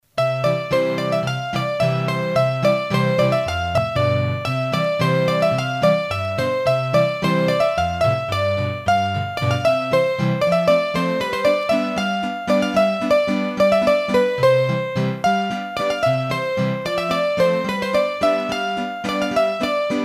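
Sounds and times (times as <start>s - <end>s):
hurdy gurdy playing a waltz in the Massif Central: 0.3s - 20.0s.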